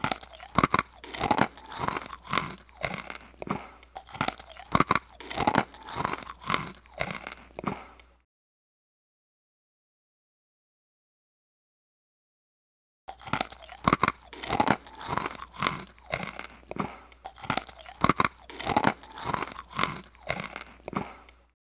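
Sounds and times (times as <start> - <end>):
eating pretzels: 0.0 - 8.2, 13.1 - 21.6.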